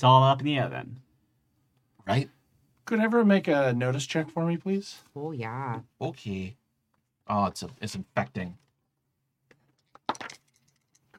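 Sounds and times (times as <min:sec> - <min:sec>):
speech: 0:00.0 - 0:01.1, 0:02.1 - 0:06.6, 0:07.3 - 0:08.6
dice clattering across a hard surface: 0:09.5 - 0:11.1.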